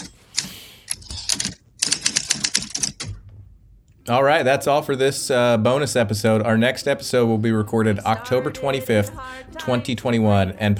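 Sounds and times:
mechanical typewriter keystrokes: 0.0s - 3.2s
speech: 4.1s - 10.7s.

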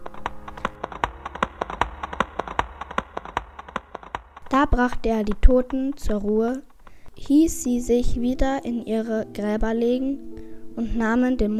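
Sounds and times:
horse hooves clip-clopping at a brisk pace: 0.0s - 8.1s
speech: 4.5s - 11.5s.

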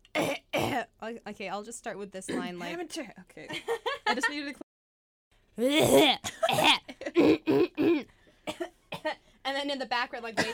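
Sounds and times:
person coughing: 0.2s - 0.8s, 2.3s - 2.7s, 5.6s - 9.2s, 10.4s - 10.5s
speech: 0.8s - 4.6s, 5.6s - 6.9s, 9.6s - 10.5s.

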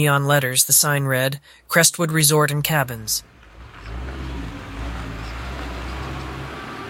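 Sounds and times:
speech: 0.0s - 3.4s
car engine idling and rolling slowly through a mountain resort: 2.3s - 6.8s.

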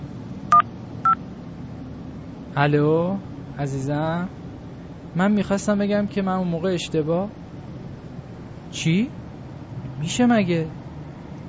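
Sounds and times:
touch-tone beeps of a telephone being dialed: 0.5s - 1.2s
speech: 2.6s - 4.4s, 5.2s - 7.4s, 8.7s - 9.2s, 10.0s - 10.8s.

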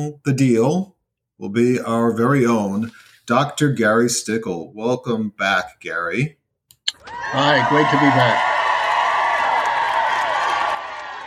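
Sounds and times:
speech: 0.0s - 6.4s, 7.0s - 8.6s
large crowd roaring and cheering: 7.0s - 11.2s.

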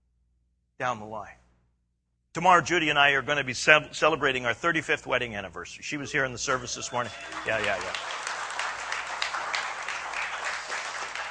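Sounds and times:
speech: 0.8s - 1.4s, 2.4s - 8.1s
audience applause: 6.5s - 11.2s.

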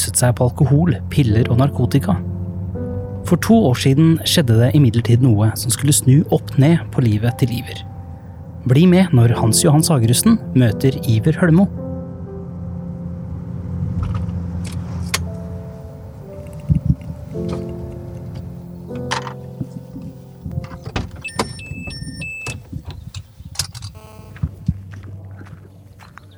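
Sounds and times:
low engine-like hum of a parked car: 0.0s - 23.2s
speech: 0.1s - 2.3s, 3.3s - 7.9s, 8.6s - 11.8s
sharp car door clunks: 18.4s - 24.0s.

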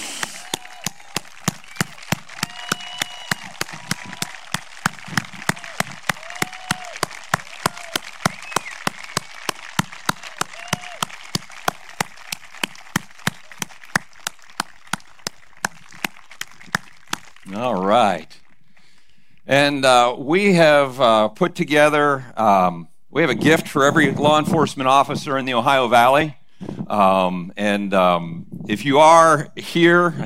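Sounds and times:
rhythmic audience clapping at a community event: 0.0s - 19.0s
speech: 19.6s - 30.2s.

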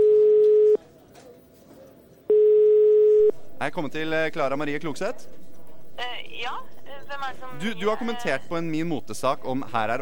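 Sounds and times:
ringback tone of an outgoing telephone call: 2.3s - 3.3s
speech: 3.6s - 5.4s, 6.0s - 9.9s.

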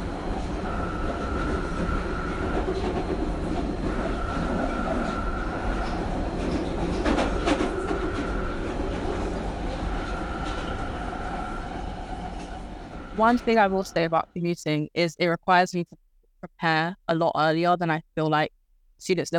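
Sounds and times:
London Underground tube train rumbling: 0.0s - 14.2s
speech: 13.2s - 19.3s.

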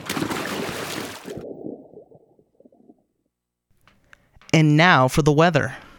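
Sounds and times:
cannonball jump splash into a bubbling hot tub: 0.0s - 1.9s
gurgling hot tub water sloshing: 0.0s - 3.2s
speech: 4.6s - 5.8s.

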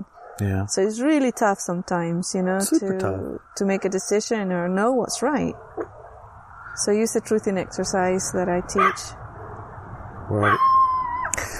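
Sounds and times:
speech: 0.4s - 6.0s, 6.8s - 9.2s, 10.3s - 10.7s
tiny puppy yapping and whining: 10.4s - 11.3s.

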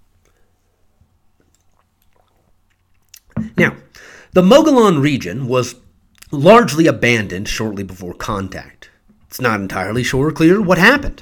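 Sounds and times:
person sipping water: 1.3s - 3.6s
swallowing: 1.4s - 3.6s
wet mouth sounds: 1.4s - 3.6s
speech: 3.6s - 11.2s.

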